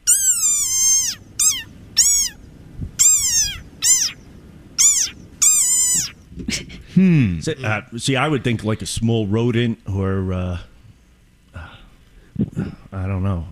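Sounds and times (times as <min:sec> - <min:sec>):
desert rain frog shrill squeaky calls: 0:00.0 - 0:06.3
speech: 0:07.0 - 0:10.7, 0:12.4 - 0:13.5.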